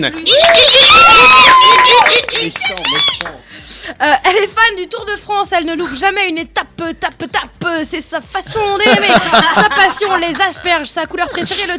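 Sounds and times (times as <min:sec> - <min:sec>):
speech: 0:00.0 - 0:01.2, 0:02.1 - 0:11.7
audience giving high-pitched hysterical screams: 0:00.4 - 0:02.2
laughter: 0:08.5 - 0:11.7.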